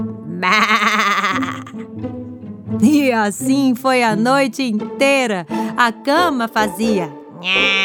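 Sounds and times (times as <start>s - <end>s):
speech: 0.0s - 0.8s, 2.8s - 7.8s
ram bleating: 0.4s - 1.8s, 7.4s - 7.8s.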